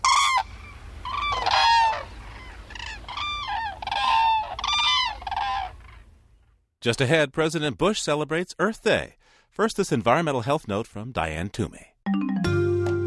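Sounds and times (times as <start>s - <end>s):
whooping cranes bugling in Leesburg Florida: 0.0s - 6.2s
speech: 6.8s - 12.3s.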